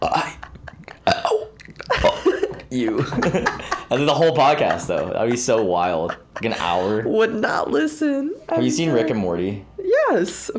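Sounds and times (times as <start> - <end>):
loud throaty burps: 0.0 - 2.4
laughter: 1.9 - 7.3
speech: 2.8 - 10.5.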